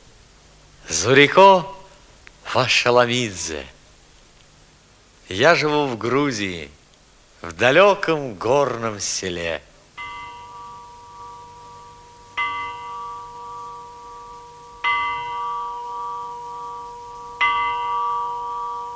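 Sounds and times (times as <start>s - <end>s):
speech: 1.0s - 1.8s, 2.5s - 3.8s, 5.3s - 6.8s, 7.4s - 9.7s
village bell tolling in a Georgian mountain village in the morning: 10.0s - 18.9s.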